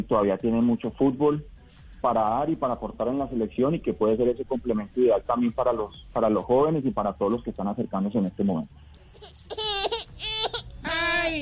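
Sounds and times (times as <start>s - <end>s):
speech: 0.0s - 9.6s
baby crying in strained wailing bursts: 9.2s - 11.3s.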